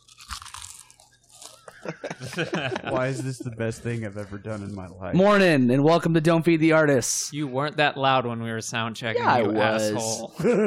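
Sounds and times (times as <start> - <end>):
Cheez-It cheese crackers being chewed: 0.0 - 1.9
laughter: 1.5 - 4.6, 9.2 - 10.6
speech: 1.8 - 10.6.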